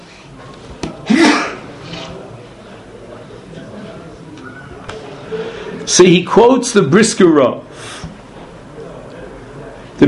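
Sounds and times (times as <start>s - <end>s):
person sneezing: 1.1s - 1.7s
speech: 5.3s - 8.0s.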